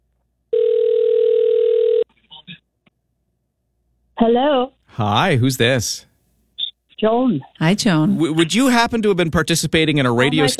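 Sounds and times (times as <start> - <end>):
telephone ringback tone on an outgoing call: 0.5 - 2.1
speech: 4.2 - 6.1, 7.0 - 10.5.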